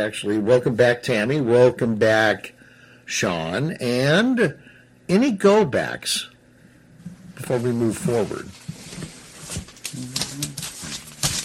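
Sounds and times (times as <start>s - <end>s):
speech: 0.0s - 6.3s, 7.4s - 8.6s, 9.5s - 10.5s
paper rustling while searching through notes: 7.5s - 11.4s
faint murmuring voice: 9.9s - 11.1s.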